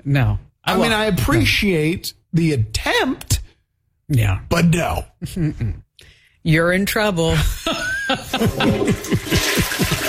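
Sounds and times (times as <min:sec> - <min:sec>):
speech: 0:00.0 - 0:03.3, 0:04.1 - 0:10.0
laughter: 0:07.4 - 0:10.0
toilet flushing with rushing water: 0:08.4 - 0:10.0.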